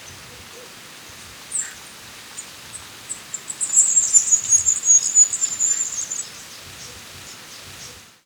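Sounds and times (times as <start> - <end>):
faint background hiss: 0.0 - 8.2
Black-crested warbler Myiothlypis nigrocristata singing high buzzy trill: 3.3 - 6.4.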